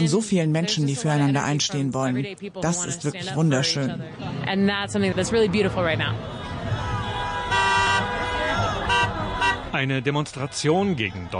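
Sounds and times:
speech: 0.0 - 6.4, 9.7 - 11.3
steady road noise: 0.0 - 11.3
crowd murmuring: 3.1 - 11.3
car horns honking from passing traffic: 6.0 - 11.3.

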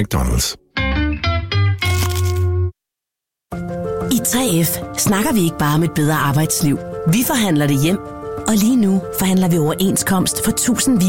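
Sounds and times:
speech: 0.0 - 0.6, 3.5 - 11.0
crunchy bite into a crispy chicken burger: 1.8 - 2.6.

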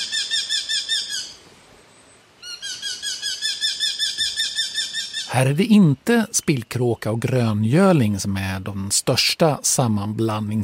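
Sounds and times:
Eurasian hobby falcon giving sharp high-pitched kew notes: 0.0 - 1.4, 2.4 - 5.8
speech: 5.3 - 10.6.

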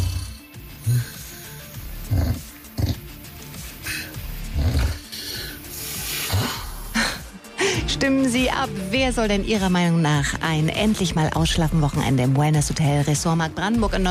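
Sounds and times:
man snoring loudly with rattling rasps and throaty snorts: 0.0 - 7.2
speech: 8.0 - 14.1.

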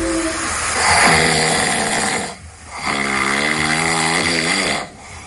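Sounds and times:
man snoring on inhale and exhale: 0.2 - 5.0.

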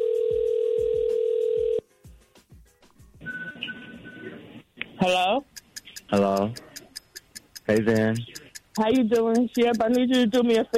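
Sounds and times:
steady loud phone dial tone: 0.0 - 1.8
speech: 5.0 - 5.5, 6.1 - 6.7, 7.7 - 10.7
faint clicks: 5.5 - 10.7.

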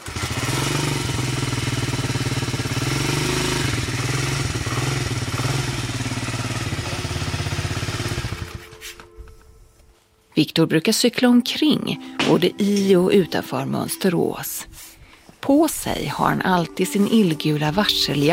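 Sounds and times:
moped engine running: 0.0 - 9.0
speech: 10.4 - 14.7, 15.5 - 18.3.

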